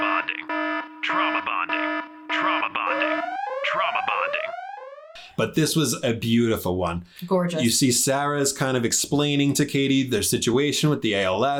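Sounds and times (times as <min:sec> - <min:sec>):
loud electronic alarm blaring in pulsing bursts and rising sweeps: 0:00.0 - 0:05.3
speech: 0:05.4 - 0:11.5.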